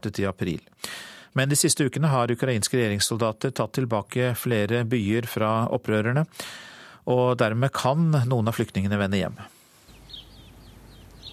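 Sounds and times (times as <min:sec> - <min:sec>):
speech: 0:00.0 - 0:09.6
bird chirping in Semenivka in eastern Ukraine: 0:09.8 - 0:11.3.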